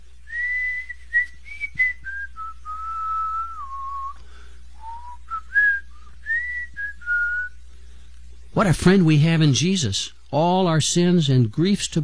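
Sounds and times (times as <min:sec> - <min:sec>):
faint low hum: 0:00.0 - 0:12.0
person whistling a slow church hymn melody while swinging on a swing: 0:00.3 - 0:07.6
speech: 0:08.6 - 0:12.0.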